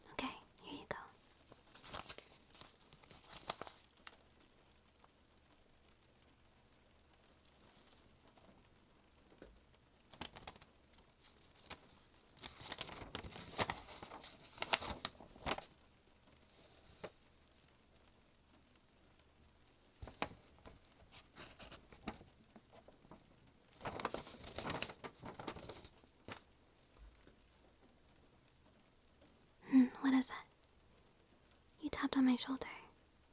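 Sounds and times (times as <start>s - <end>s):
paper rustling and crinkling as it is handed over and unfolded: 1.0s - 4.3s, 7.2s - 17.7s, 19.7s - 27.8s
speech: 30.2s - 30.4s, 32.2s - 32.8s.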